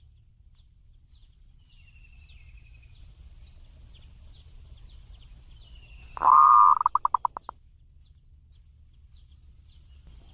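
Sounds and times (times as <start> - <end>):
zebra dove cooing: 6.2 - 7.5.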